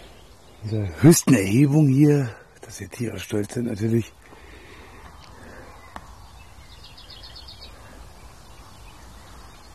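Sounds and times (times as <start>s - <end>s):
songbirds singing: 0.0s - 9.7s
steady outdoor noise: 0.0s - 9.7s
speech: 0.6s - 4.2s.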